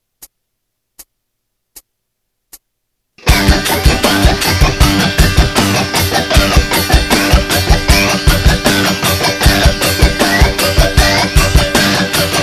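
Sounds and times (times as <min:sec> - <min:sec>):
guitar scratch: 0:03.2 - 0:12.4.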